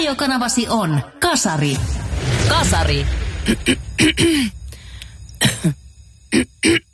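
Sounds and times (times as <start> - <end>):
speech: 0.1 - 4.6, 5.4 - 6.9
person clearing throat: 3.4 - 4.6, 5.4 - 6.9
person coughing in harsh bursts: 3.4 - 4.6, 5.4 - 6.9.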